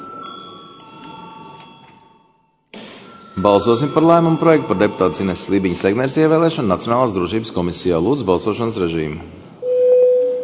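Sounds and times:
electric bell ringing in a parliament chamber before a vote: 0:00.0 - 0:06.5
speech: 0:03.4 - 0:09.4.

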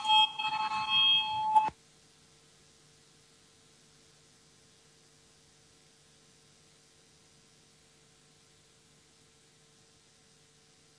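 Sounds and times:
parliament voting bell ringing before a vote: 0:00.0 - 0:01.7.

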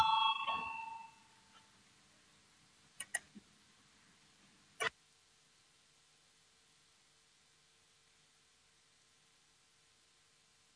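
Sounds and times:
parliament voting bell: 0:00.0 - 0:01.5
sharp clicks: 0:03.0 - 0:03.4.

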